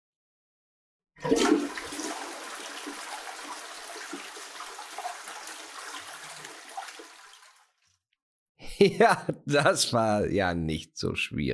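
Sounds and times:
speech: 1.2 - 1.6, 8.8 - 11.5
toilet flushing: 1.2 - 7.8
laughter: 8.6 - 10.1.

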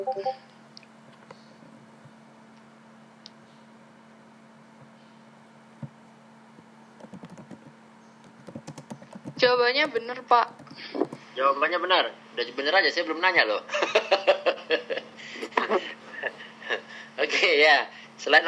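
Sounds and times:
speech: 0.0 - 0.5, 9.5 - 14.9, 15.7 - 16.0, 17.2 - 18.4
steady electrical hum: 0.0 - 18.4
keyboard keystrokes tapping: 7.0 - 11.2
laughter: 13.7 - 17.5.

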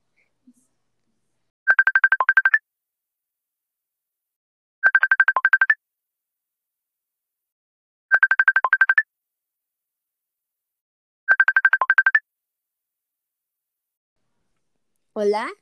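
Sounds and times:
electronic phone ringtone while placing a call: 1.7 - 2.6, 4.8 - 5.8, 8.1 - 9.1, 11.3 - 12.2
speech: 15.2 - 15.6.

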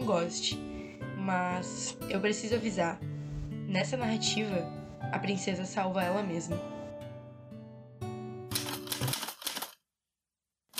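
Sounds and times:
soft sustained music: 0.0 - 9.2
speech: 0.1 - 6.8
typewriter keys clacking: 8.5 - 9.8.

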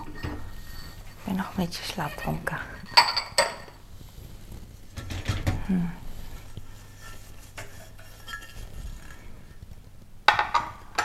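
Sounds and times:
dishes including a square plate clinking at a kitchen counter: 0.0 - 1.0, 1.9 - 3.8, 7.6 - 9.2, 10.3 - 11.0
speech: 1.4 - 2.8, 5.7 - 6.0.

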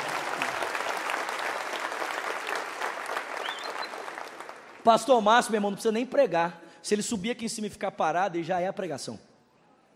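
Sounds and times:
church audience applauding: 0.0 - 5.1
speech: 4.8 - 9.3.

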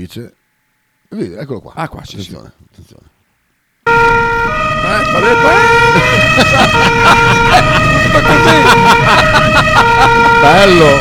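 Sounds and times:
speech: 0.0 - 0.4, 1.1 - 3.2, 4.8 - 10.9
police car siren wailing: 3.9 - 10.9
laughter: 5.6 - 10.9.

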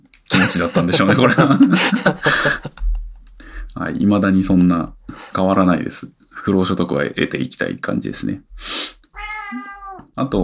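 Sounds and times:
laughter: 0.3 - 3.1
speech: 0.5 - 2.7, 3.8 - 9.6, 10.2 - 10.4
cat meowing while trying to climb onto a person's lap: 9.2 - 10.1.

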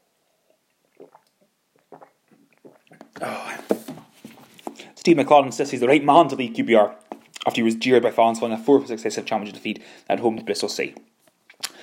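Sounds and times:
person slurping and swallowing hot tea: 0.3 - 5.0
speech: 5.0 - 11.1.

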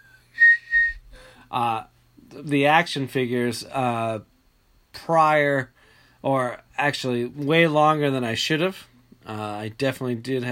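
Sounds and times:
person whistling a tune: 0.0 - 1.2
speech: 1.5 - 4.3, 5.0 - 10.5.

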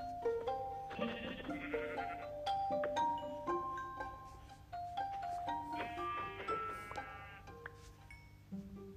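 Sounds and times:
soft tonal music: 0.0 - 8.9
sheep bleating: 0.9 - 2.3, 5.7 - 7.6.

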